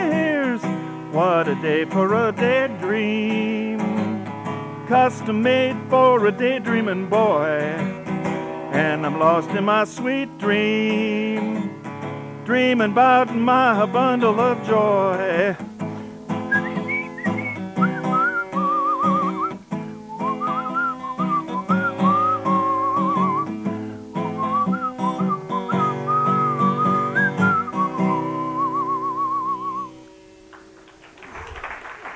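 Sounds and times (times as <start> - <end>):
instrumental backing music: 0.0 - 30.9
speech: 1.2 - 3.8, 4.9 - 8.0, 8.7 - 11.7, 12.5 - 15.7
person whistling a melody with vibrato: 16.4 - 23.6, 24.2 - 30.0.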